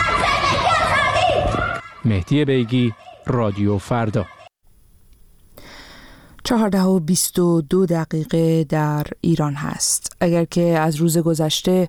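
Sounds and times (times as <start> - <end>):
young protesters chanting slogans and shouting outdoors: 0.0 - 4.5
speech: 2.0 - 4.4, 6.5 - 11.8.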